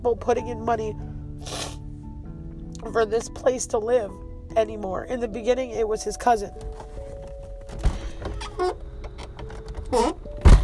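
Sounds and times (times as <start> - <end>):
speech: 0.0 - 1.6, 2.8 - 6.9, 9.9 - 10.2
rustling: 6.5 - 7.8
car door shutting with a solid thump: 6.6 - 10.6.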